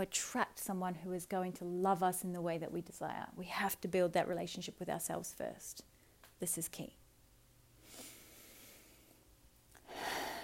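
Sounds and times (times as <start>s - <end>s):
speech: 0.0s - 7.0s
person drawing a slow deep breath: 7.8s - 9.2s, 9.8s - 10.4s.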